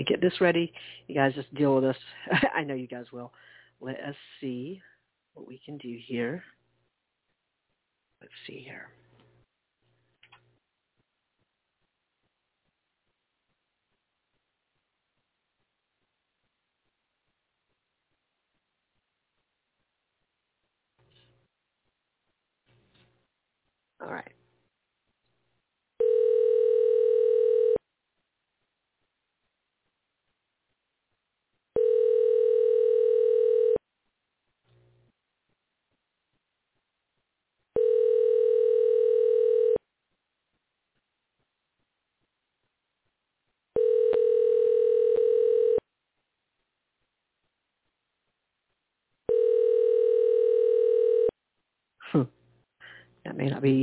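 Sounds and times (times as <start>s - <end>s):
speech: 0.0s - 6.6s, 8.2s - 9.0s, 24.0s - 24.4s, 53.3s - 53.8s
phone line ringback tone while calling: 26.0s - 27.8s, 31.8s - 33.8s, 37.8s - 39.8s, 43.8s - 45.8s, 49.3s - 51.3s.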